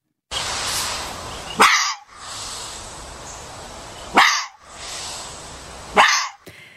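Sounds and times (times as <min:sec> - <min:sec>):
steady hiss of noise: 0:00.3 - 0:06.6
foxes barking: 0:01.4 - 0:02.8, 0:03.9 - 0:06.4.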